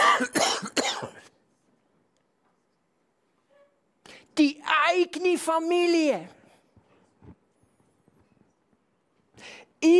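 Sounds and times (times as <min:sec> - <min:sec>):
harsh raspy coughing fit: 0:00.0 - 0:01.3
speech: 0:04.4 - 0:06.4, 0:09.4 - 0:09.9.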